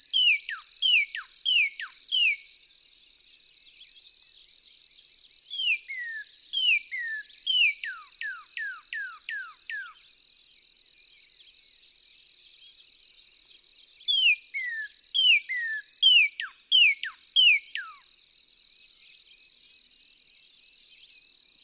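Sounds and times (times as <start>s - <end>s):
Northern cardinal song of whistles and downward sweeps: 0.0s - 2.4s, 3.8s - 10.0s, 11.8s - 18.1s, 21.0s - 21.6s.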